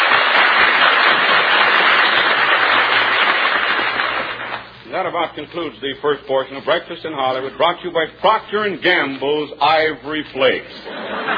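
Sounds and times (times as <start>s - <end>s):
studio audience applauding: 0.0s - 4.8s
speech: 5.0s - 11.3s
laughter: 10.8s - 11.3s.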